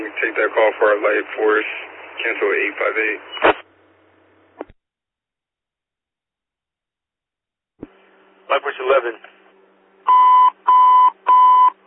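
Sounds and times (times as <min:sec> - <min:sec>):
speech: 0:00.2 - 0:03.5, 0:08.5 - 0:09.3
fire station alert tone electronic beeps: 0:10.1 - 0:11.7.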